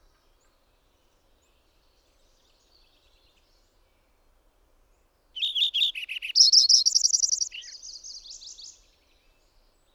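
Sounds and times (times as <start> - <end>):
bird song: 0.0 - 4.2, 4.9 - 9.9.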